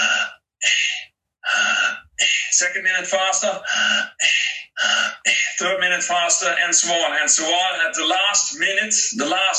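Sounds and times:
deep breaths in and out in a breathing exercise: 0.0 - 2.6, 3.6 - 5.6
speech: 2.6 - 9.5.

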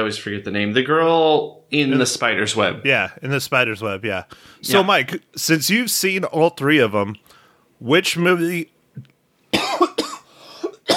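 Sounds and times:
speech: 0.0 - 9.1
man coughing from a tickle in his throat: 9.6 - 10.9.

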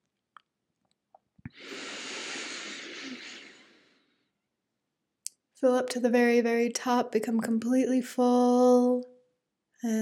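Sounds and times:
slow inhalation: 1.5 - 4.4
speech: 5.6 - 9.1, 9.8 - 10.0.

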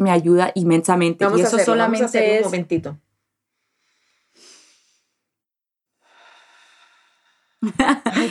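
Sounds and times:
speech: 0.0 - 3.0, 7.6 - 8.2
slow deliberate breath drawn in for a breathing exercise: 3.5 - 5.2, 6.0 - 7.6
long airy exhale: 3.7 - 5.1, 6.0 - 7.6
laughter: 7.6 - 8.2.

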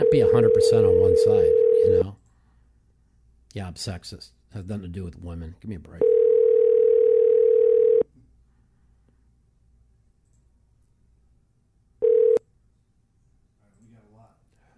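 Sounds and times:
telephone dial tone: 0.0 - 2.0, 6.0 - 8.0, 12.0 - 12.4
speech: 0.1 - 2.2, 3.6 - 6.2.

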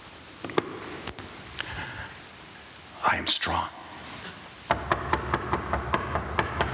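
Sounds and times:
speech: 3.0 - 3.8
knocking on a door or hard surface: 4.7 - 6.7.

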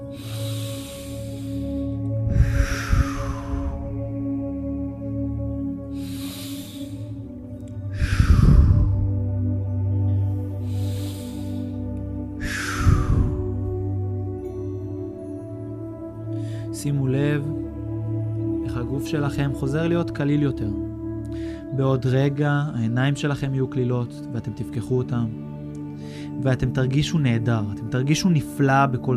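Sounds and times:
slow deep breaths close to the microphone: 0.0 - 16.8, 20.8 - 21.8, 25.8 - 26.4
soft steady ambient drone: 0.0 - 29.1
speech: 19.1 - 21.0, 21.7 - 25.4, 26.4 - 29.1.

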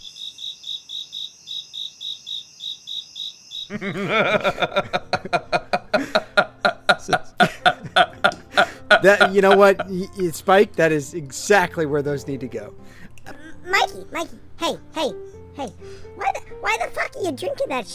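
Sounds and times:
crickets chirping: 0.0 - 3.8
speech: 3.7 - 5.4, 9.0 - 13.0, 13.7 - 17.9
laughter: 3.7 - 10.1.

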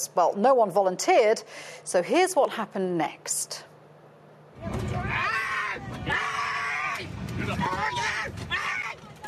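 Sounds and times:
speech: 0.0 - 3.7
noisy commotion of other voices: 4.5 - 9.2
man screaming while dragged off an overbooked plane in Chicago: 4.6 - 8.9.

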